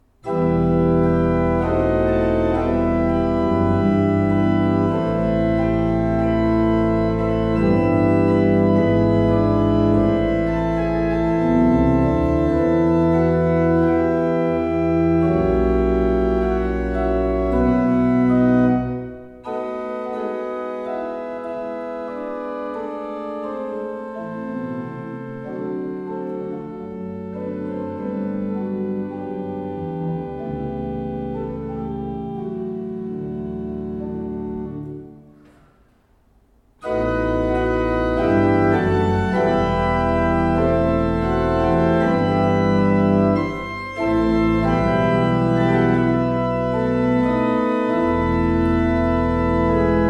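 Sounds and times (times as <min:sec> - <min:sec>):
used organ: 0:00.0 - 0:35.7, 0:36.8 - 0:50.0.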